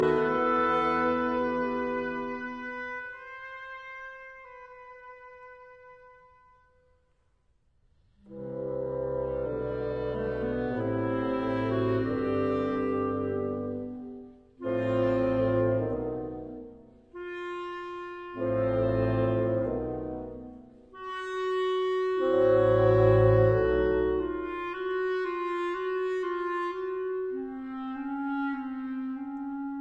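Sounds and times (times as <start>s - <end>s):
wind ensemble playing an overture arrangement: 0.0s - 6.6s, 8.2s - 29.8s.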